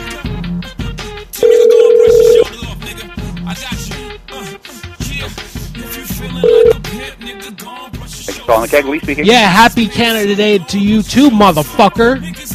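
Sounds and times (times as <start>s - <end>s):
busy music: 0.0s - 12.5s
telephone tone after a hang-up: 1.4s - 2.5s, 6.4s - 6.8s
speech: 8.5s - 12.4s.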